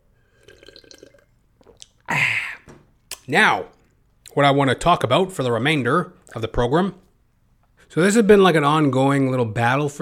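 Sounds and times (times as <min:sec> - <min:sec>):
person gulping a drink of water: 0:00.1 - 0:04.3
soft liquid sounds of sipping water: 0:00.2 - 0:02.0
speech: 0:03.3 - 0:03.8, 0:04.4 - 0:07.0, 0:07.9 - 0:09.9.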